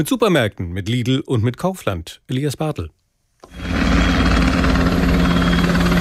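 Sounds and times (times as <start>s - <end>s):
speech: 0.0s - 3.8s
helicopter flying over the city: 3.5s - 5.9s.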